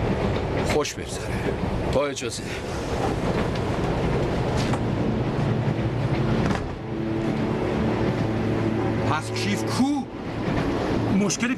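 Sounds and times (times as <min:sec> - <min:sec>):
moving passenger train rolling along the rails: 0:00.0 - 0:11.5
speech: 0:00.8 - 0:03.3, 0:09.2 - 0:10.0, 0:11.3 - 0:11.5
low droning hum: 0:04.4 - 0:09.4.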